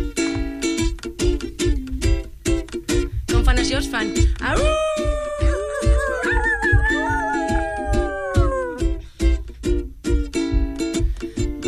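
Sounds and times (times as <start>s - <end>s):
steady loud rhythmic beat with drum hits: 0.0s - 11.6s
voices imitating a wolf howl: 4.5s - 9.0s.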